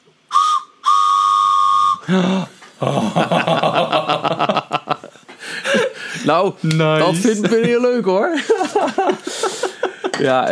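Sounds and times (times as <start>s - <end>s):
train-themed toy whistle blown: 0.3s - 2.1s
laughter: 2.0s - 10.4s
speech: 2.1s - 4.6s, 6.2s - 9.5s, 10.2s - 10.4s.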